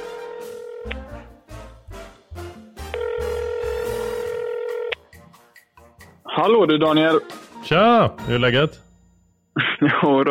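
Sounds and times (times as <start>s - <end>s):
steady phone dial tone: 0.5s - 1.1s, 2.9s - 5.0s
speech: 6.4s - 8.8s, 9.8s - 10.2s
laughter: 9.6s - 10.2s.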